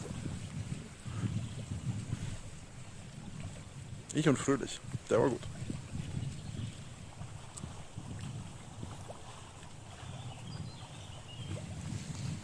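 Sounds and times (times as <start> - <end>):
strong wind roaring outdoors: 0.0 - 12.4
speech: 4.1 - 5.6.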